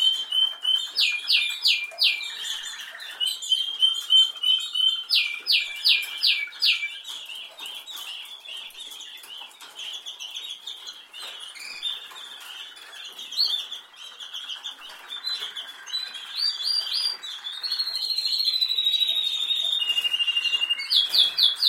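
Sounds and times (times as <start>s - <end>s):
canary singing: 0.0s - 21.6s.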